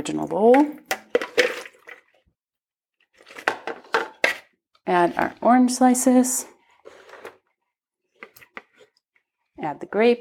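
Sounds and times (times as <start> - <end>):
speech: 0.0 - 0.8, 4.9 - 6.5, 9.6 - 10.1
water splashing and draining off sliced fennel: 0.7 - 2.2.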